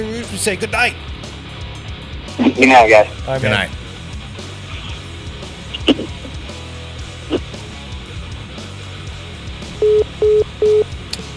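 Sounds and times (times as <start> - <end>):
speech: 0.0 - 1.2, 2.4 - 3.8
electronic tones from a studio phone system as a call ends: 9.8 - 10.9.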